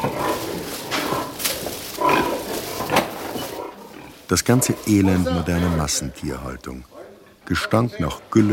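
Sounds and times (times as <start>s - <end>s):
piglets and sows grunting and squealing in crowded barn: 0.0s - 5.9s
speech: 4.3s - 8.5s.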